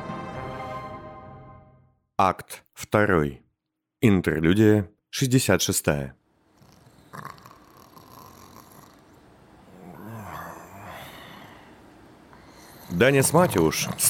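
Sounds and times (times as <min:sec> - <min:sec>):
speech: 0:02.2 - 0:03.4, 0:04.0 - 0:06.2, 0:13.0 - 0:14.0
drunk man snoring heavily with rattling rumble: 0:06.6 - 0:11.8, 0:12.4 - 0:14.0.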